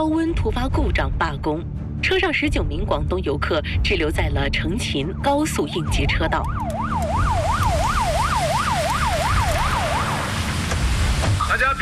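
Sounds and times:
speech: 0.0 - 7.0, 11.6 - 11.8
traffic police car siren wailing on an expressway: 4.8 - 10.9
steady rumble of expressway road traffic: 5.8 - 11.6.

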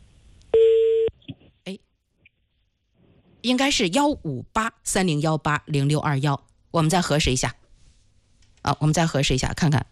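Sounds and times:
telephone dialing tone beep: 0.6 - 1.1
speech: 1.7 - 1.9, 3.4 - 7.6, 8.6 - 9.8.

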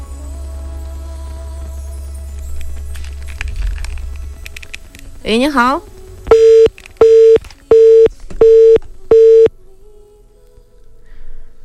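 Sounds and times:
faint low hum: 0.0 - 11.6
speech: 5.2 - 5.9
phone busy tone after a call drops: 6.3 - 9.5.

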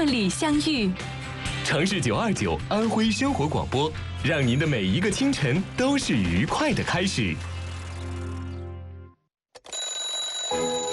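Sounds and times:
speech: 0.0 - 1.1, 1.7 - 7.5
alarm clock blaring with a loud buzzy ring: 9.7 - 10.9.

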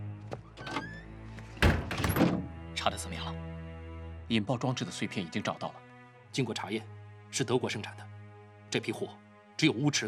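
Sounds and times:
door shutting with a thud: 1.6 - 2.5
speech: 2.8 - 3.5, 4.3 - 8.1, 8.7 - 10.0.

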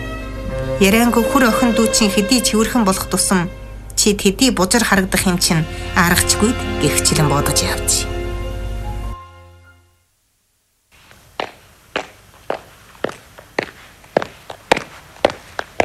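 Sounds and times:
brief low musical tone: 0.0 - 10.1
speech: 0.5 - 8.2
sharp footsteps approaching from behind in an even walking rhythm: 10.9 - 15.8.

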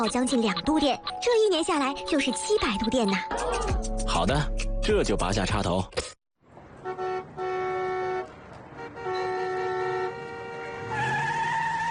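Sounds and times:
speech: 0.0 - 6.1
car horns honking in traffic: 6.5 - 11.9
tires screeching: 6.5 - 11.9.

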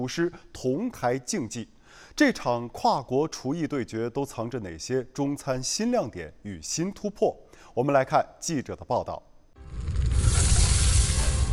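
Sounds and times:
speech: 0.0 - 9.9
wok cooking sizzling at a Chinese cuisine cooking championship: 9.6 - 11.5.

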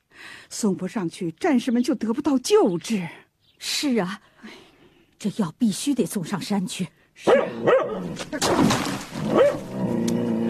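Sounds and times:
speech: 0.5 - 4.6, 5.2 - 10.2
big yellow dog barking and yipping at a urine bucket: 7.3 - 8.1, 9.3 - 9.7.

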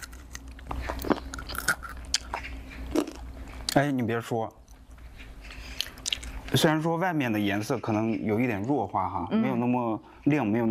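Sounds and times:
biting and chewing a spinach cookie: 0.0 - 6.8
speech: 3.8 - 4.6, 6.6 - 10.6.

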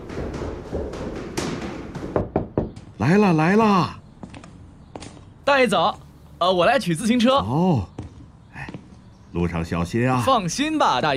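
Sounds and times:
knocking on a door: 0.0 - 3.0
speech: 3.0 - 4.0, 5.5 - 7.9, 9.3 - 11.1.

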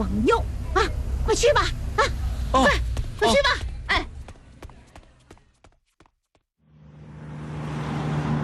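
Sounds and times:
speech: 0.0 - 2.8
footsteps: 2.7 - 6.4.

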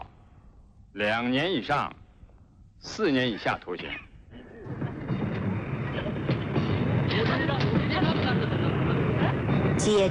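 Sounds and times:
speech: 1.0 - 2.0, 2.8 - 4.1, 9.8 - 10.0
train rumbling along the rails in winter: 4.6 - 10.0.

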